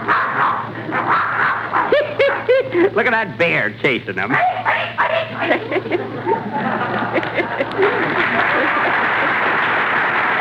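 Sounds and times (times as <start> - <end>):
dog barking and yapping: 0.0 - 2.6, 4.4 - 5.6
laughter: 1.9 - 3.4, 5.3 - 10.3
speech: 2.7 - 8.8.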